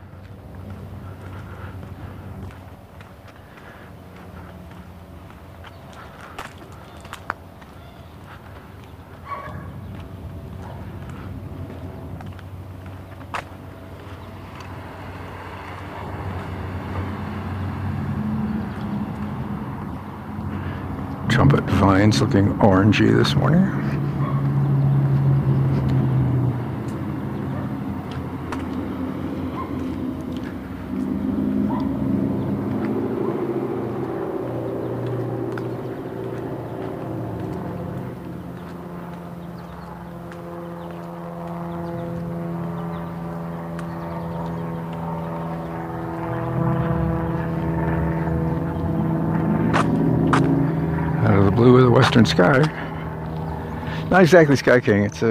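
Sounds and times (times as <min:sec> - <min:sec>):
single-engine high-wing propeller plane droning overhead: 0:00.0 - 0:55.3
speech: 0:21.4 - 0:24.0, 0:52.2 - 0:52.8, 0:54.1 - 0:55.3.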